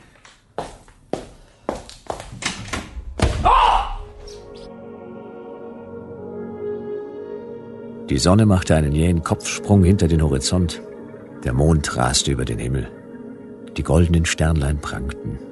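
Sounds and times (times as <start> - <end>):
soft footsteps in an office: 0.0 - 2.5
office side room door closing with rattle: 2.3 - 3.5
speech: 8.1 - 13.0, 13.8 - 15.4.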